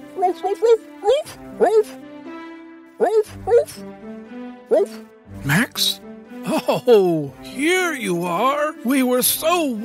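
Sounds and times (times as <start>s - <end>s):
speech: 0.2s - 2.1s, 3.0s - 9.8s
person imitating a dog's excited barking: 0.4s - 2.0s, 3.0s - 3.8s, 4.7s - 5.0s.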